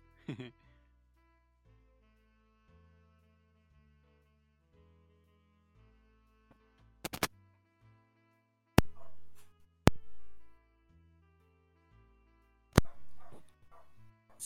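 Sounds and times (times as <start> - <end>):
speech: 0.3 - 0.7
dog barking: 8.8 - 10.5, 12.8 - 14.4.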